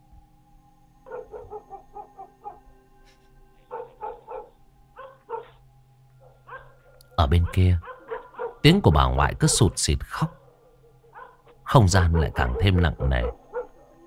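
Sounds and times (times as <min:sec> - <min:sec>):
low steady hum: 0:00.0 - 0:14.0
neighbour's dog barking at night: 0:01.1 - 0:02.6, 0:03.6 - 0:05.6, 0:06.2 - 0:08.6, 0:09.4 - 0:13.9
speech: 0:07.3 - 0:07.9, 0:08.6 - 0:10.4, 0:11.7 - 0:13.4.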